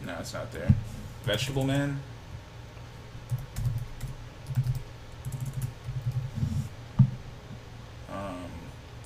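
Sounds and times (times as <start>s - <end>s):
speech: 0.2s - 2.1s
typing on a computer keyboard: 3.3s - 6.3s.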